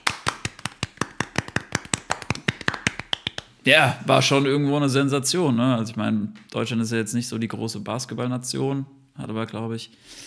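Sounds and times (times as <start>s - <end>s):
single person hand clapping: 0.0s - 3.6s
speech: 3.6s - 10.2s.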